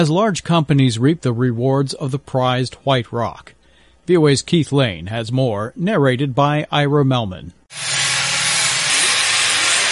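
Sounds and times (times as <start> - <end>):
speech: 0.0 - 8.0
marble cutting and grinding machines roaring: 7.7 - 9.9.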